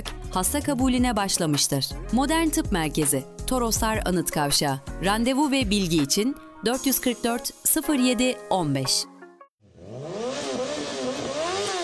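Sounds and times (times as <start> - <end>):
speech: 0.4 - 9.1
motorcycle engine revving: 9.6 - 11.8.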